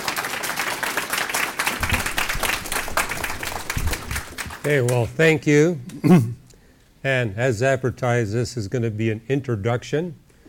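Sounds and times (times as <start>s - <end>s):
large audience applauding: 0.0s - 5.0s
speech: 4.6s - 6.4s, 7.0s - 10.2s.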